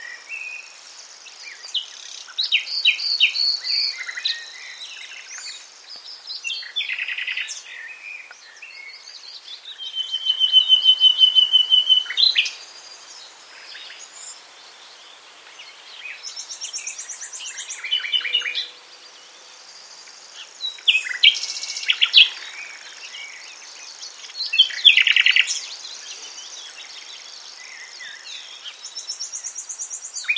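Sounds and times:
common nightingale Luscinia megarhynchos singing: 0.0 - 30.3
speech: 3.1 - 4.4.

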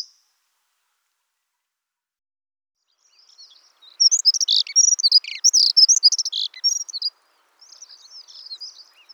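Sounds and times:
dunnock Prunella modularis song of tinkling warbled phrases: 3.4 - 9.1.

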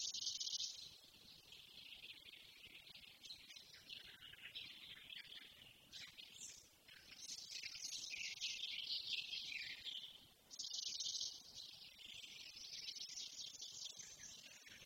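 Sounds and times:
Eurasian blackcap song, Sylvia atricapilla: 0.0 - 14.8.

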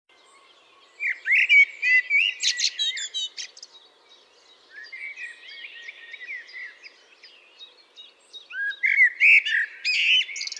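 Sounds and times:
Common blackbird singing Turdus merula: 0.1 - 10.5.

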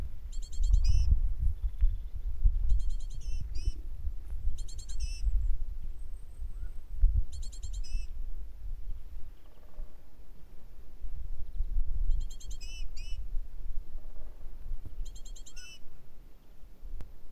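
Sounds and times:
great tit Parus major calling: 0.3 - 3.8, 4.6 - 5.4, 7.3 - 8.1, 11.4 - 13.2, 15.0 - 15.9.

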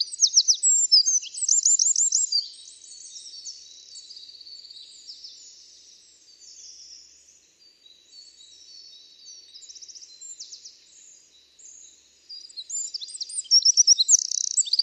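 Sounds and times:
Eurasian wren Troglodytes troglodytes delivering loud very high rapid trills: 0.0 - 2.4, 12.4 - 14.8.

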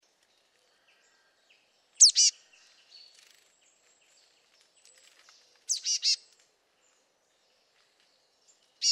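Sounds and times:
Marsh tit (Poecile palustris) giving sharp high calls: 2.0 - 2.4.

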